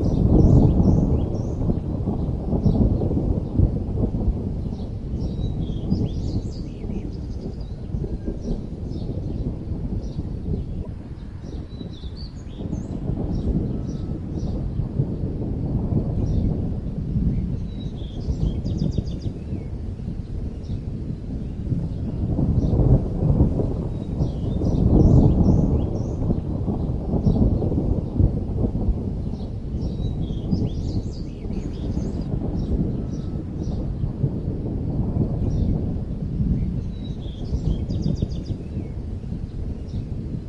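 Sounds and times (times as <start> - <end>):
small birds chirping: 0.0 - 3.6, 4.7 - 15.2, 16.2 - 16.7, 17.3 - 22.8, 23.9 - 28.2, 29.2 - 34.1, 36.5 - 40.3
strong wind roaring: 0.0 - 40.4.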